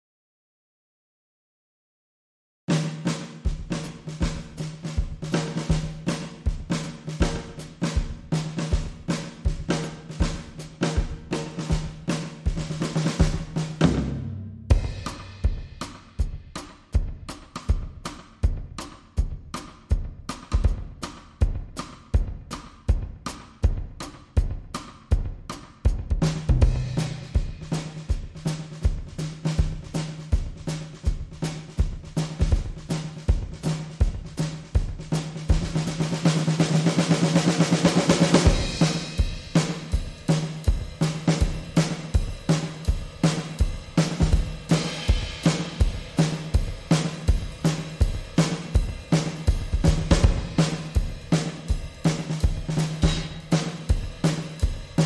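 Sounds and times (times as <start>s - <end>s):
clean drums: 2.7s - 55.0s.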